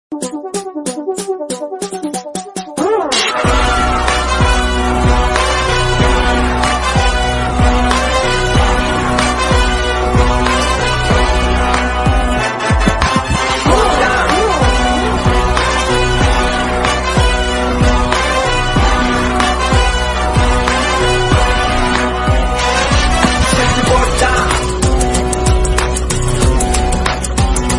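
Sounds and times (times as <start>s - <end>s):
Tamil ringtone background music: 0.1s - 27.7s.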